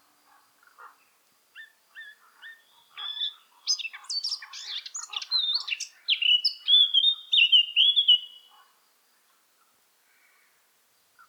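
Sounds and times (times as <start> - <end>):
Eurasian blackcap Sylvia atricapilla singing fluty whistles: 2.5 - 8.5.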